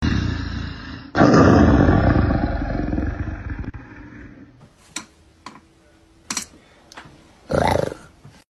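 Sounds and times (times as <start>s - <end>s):
tiger roaring: 0.0s - 4.4s, 7.5s - 8.1s.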